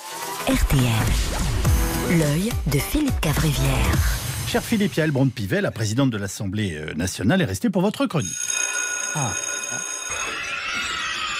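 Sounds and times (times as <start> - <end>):
speech: 0.5 - 8.6, 9.2 - 9.9
school playground bell ringing: 8.2 - 11.3.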